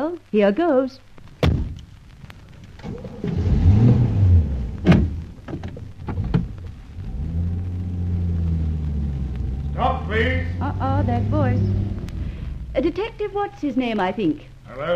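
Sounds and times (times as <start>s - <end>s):
speech: 0.2s - 1.1s, 9.8s - 11.9s, 12.8s - 14.9s
car engine cranking, catching and idling: 2.6s - 14.9s
clicks and clunks: 4.8s - 6.8s.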